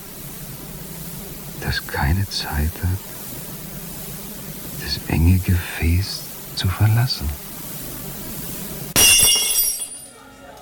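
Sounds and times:
speech: 1.6s - 3.1s, 4.8s - 7.4s
thrown drinking glass shattering with a loud crash: 9.0s - 10.2s
tinkling shards of a drinking glass: 9.0s - 10.2s.

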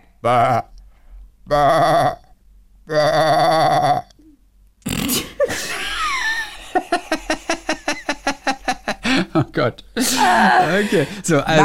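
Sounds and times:
person imitating goat bleats: 0.2s - 0.7s, 1.5s - 2.3s, 2.9s - 4.2s
speech: 0.2s - 0.7s, 1.5s - 2.2s, 2.9s - 4.1s, 9.6s - 11.6s
laughter: 5.5s - 11.6s.

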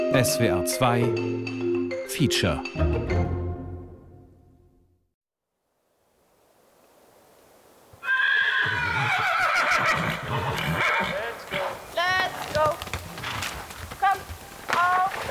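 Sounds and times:
speech: 0.1s - 3.4s
shrill wavering cries: 8.0s - 11.1s
loud horse whinnies: 8.0s - 15.2s.

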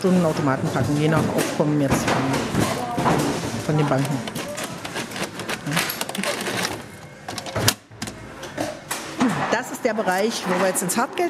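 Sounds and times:
speech: 0.0s - 4.4s, 9.8s - 11.2s
machines sorting, counting and rolling coins in a cash processing centre: 3.6s - 7.6s.

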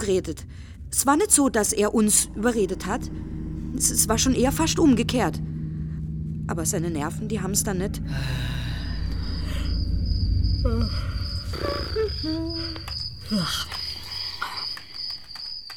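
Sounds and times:
speech: 0.0s - 5.6s, 6.5s - 8.7s, 12.2s - 13.8s
brief warbling tones: 0.0s - 13.4s
low rumbling noise: 0.0s - 14.1s
crickets chirping from a sound device: 0.0s - 15.7s.

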